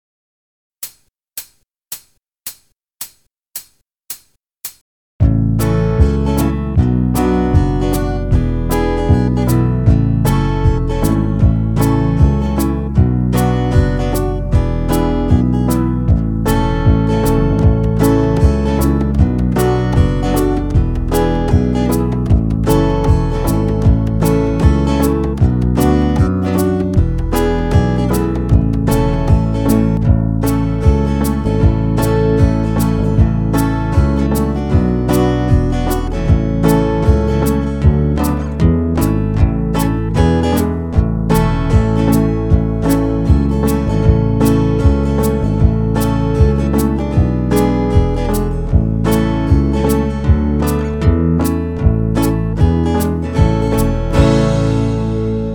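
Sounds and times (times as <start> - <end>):
banjo backing track: 5.2 - 55.5.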